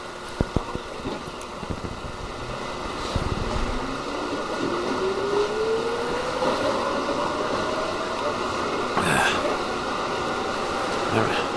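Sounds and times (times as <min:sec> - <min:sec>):
subway train rumbling: 0:00.0 - 0:11.5
voices: 0:08.2 - 0:09.8, 0:10.9 - 0:11.5.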